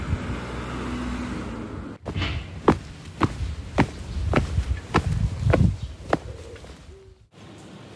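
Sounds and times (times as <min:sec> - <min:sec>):
passing traffic rumble: 0:00.0 - 0:05.7
low road hum: 0:00.0 - 0:07.8
footsteps walking along a street: 0:02.0 - 0:07.0.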